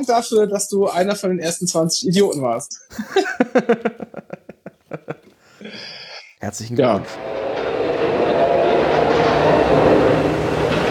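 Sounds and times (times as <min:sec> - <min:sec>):
speech: 0:00.0 - 0:04.4, 0:06.4 - 0:07.4
laughter: 0:02.9 - 0:05.4
train rolling on rails: 0:07.1 - 0:10.8.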